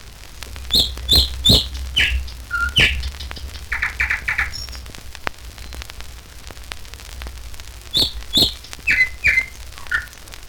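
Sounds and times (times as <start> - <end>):
steady low hum: 0.0 - 10.2
nightingale song: 0.6 - 5.0, 7.9 - 10.3.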